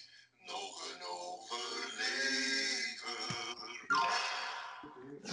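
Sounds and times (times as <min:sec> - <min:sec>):
voice imitating a podcast mid-segment jingle: 0:00.6 - 0:05.3.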